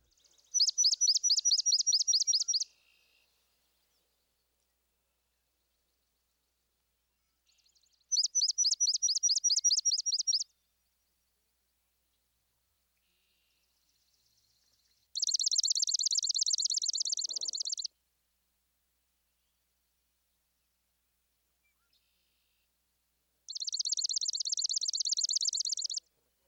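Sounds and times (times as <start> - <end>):
swamp sparrow singing chipping reedy trills: 0.1 - 2.7, 7.7 - 10.4, 14.8 - 17.9, 23.5 - 26.0.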